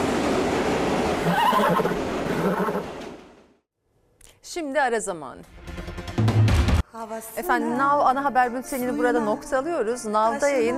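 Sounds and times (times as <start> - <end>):
steady outdoor noise: 0.0 - 5.4
horse neighing: 1.2 - 2.9
speech: 1.6 - 1.9, 4.6 - 5.6, 6.9 - 10.7.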